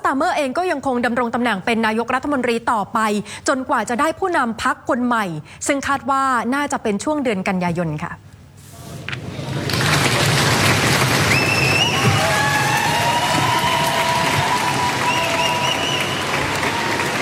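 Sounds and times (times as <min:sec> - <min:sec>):
speech: 0:00.1 - 0:08.3
dense clapping of a large crowd: 0:09.4 - 0:17.1
people cheering: 0:09.6 - 0:17.1
high whistles: 0:11.2 - 0:17.1.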